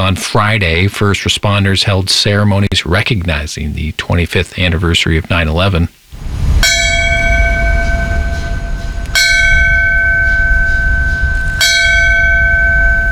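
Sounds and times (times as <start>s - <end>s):
speech: 0.0s - 6.0s
steady low rumble: 4.7s - 13.1s
ceremonial bell ringing: 6.6s - 13.1s.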